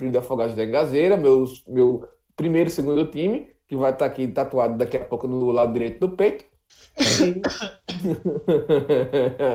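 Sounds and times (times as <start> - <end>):
speech: 0.0 - 9.5
person coughing from dust: 7.0 - 8.3
laughter: 7.9 - 9.5.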